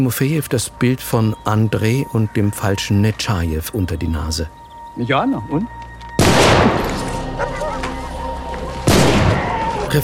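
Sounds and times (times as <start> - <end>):
speech: 0.0 - 5.8
loud gunshots with decay: 6.2 - 7.1, 8.9 - 9.7.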